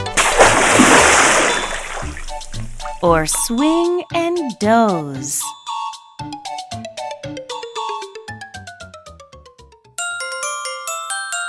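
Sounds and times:
water splashing and spraying during a car wash: 0.0 - 3.5
speech: 3.0 - 5.6.

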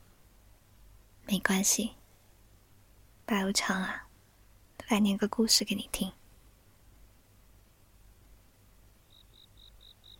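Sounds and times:
constant low hum of night ambience: 0.0 - 10.1
faint hiss of night ambience: 0.0 - 10.1
speech: 1.3 - 2.0, 3.3 - 4.0, 4.9 - 6.2
cicadas chirping on a humid summer night: 9.0 - 10.1.

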